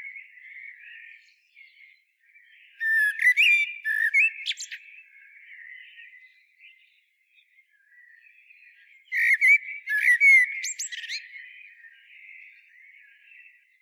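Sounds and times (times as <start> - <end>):
common blackbird Turdus merula song phrase: 0.0 - 13.8.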